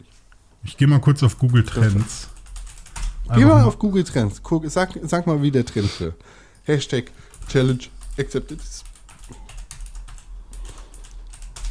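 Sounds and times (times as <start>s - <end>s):
speech: 0.6s - 2.3s, 3.3s - 9.4s
fast typing on a computer keyboard: 1.2s - 3.3s, 7.2s - 11.6s.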